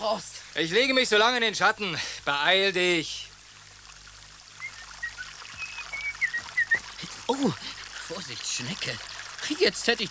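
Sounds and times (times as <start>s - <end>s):
speech: 0.1s - 3.3s, 7.3s - 10.1s
flowing brook trickling and gurgling: 0.4s - 10.1s
small irregular splashes in a brook: 3.3s - 10.1s.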